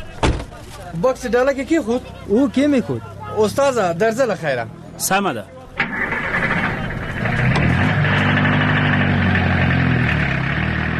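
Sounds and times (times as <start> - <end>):
speech: 0.8 - 6.0
taxi car engine running: 5.8 - 10.9.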